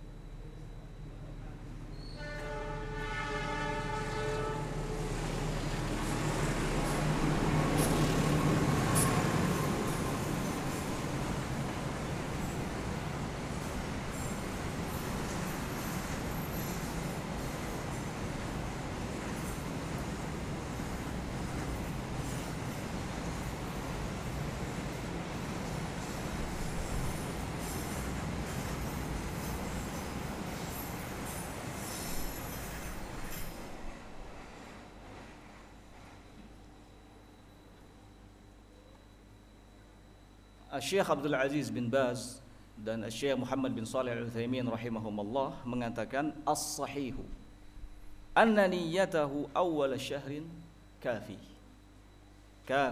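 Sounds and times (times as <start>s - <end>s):
train passing with rolling wheels and rattling cars: 0.0s - 37.3s
train horn blast: 2.0s - 5.3s
speech: 40.7s - 47.4s, 48.4s - 51.5s, 52.7s - 52.9s.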